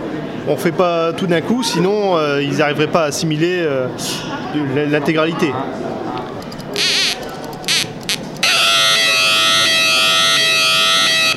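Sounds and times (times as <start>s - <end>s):
speech: 0.5s - 6.1s
homemade electronic alarm buzzing: 6.5s - 11.3s.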